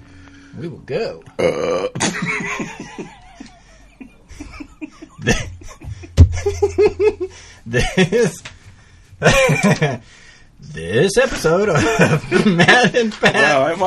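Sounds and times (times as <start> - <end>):
speech: 0.7 - 1.9, 7.9 - 8.4, 9.7 - 10.2, 10.9 - 13.8
big loud low drawn-out burp: 1.4 - 2.0
people laughing: 2.0 - 8.5, 9.2 - 10.1, 11.7 - 13.8.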